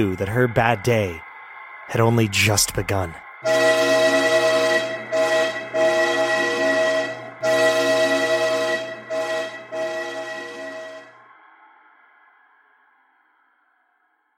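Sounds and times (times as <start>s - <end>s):
speech: 0.0s - 1.2s, 1.9s - 3.8s
train rolling through a tunnel within the mountains: 0.0s - 14.3s
train horn blasts: 3.4s - 11.2s.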